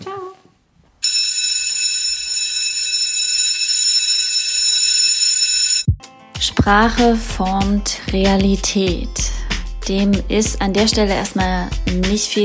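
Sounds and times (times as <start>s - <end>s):
electric school bell ringing: 1.0s - 5.9s
speech: 6.6s - 12.4s.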